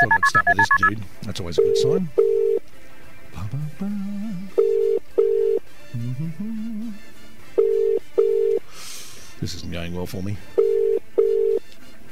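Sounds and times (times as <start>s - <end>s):
speech: 0.0s - 2.2s, 3.5s - 4.1s, 9.5s - 10.6s
telephone ringback tone on an outgoing call to a doctor: 1.6s - 2.6s, 4.6s - 5.6s, 7.6s - 8.6s, 10.6s - 11.6s.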